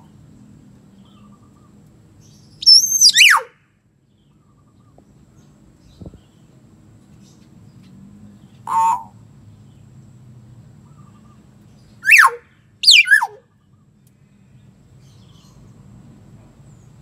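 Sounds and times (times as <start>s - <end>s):
common hill myna giving loud swooping whistles: 2.7s - 3.5s, 12.1s - 13.4s.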